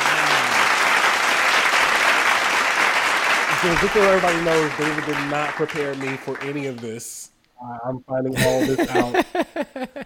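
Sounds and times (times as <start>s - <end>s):
crowd applauding at an engagement celebration: 0.0s - 7.0s
speech: 3.6s - 10.0s
laughter: 8.4s - 10.0s.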